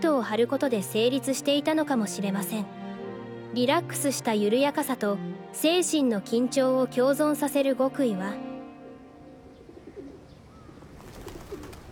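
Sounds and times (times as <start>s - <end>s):
speech: 0.0s - 2.8s, 3.5s - 8.5s
breezy wind: 8.4s - 11.8s
pigeon cooing outdoors: 9.4s - 11.8s.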